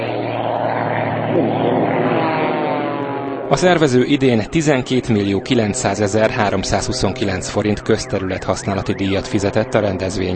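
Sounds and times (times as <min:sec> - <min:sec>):
propeller planes at an air race droning overhead: 0:00.0 - 0:10.3
speech: 0:03.5 - 0:10.3.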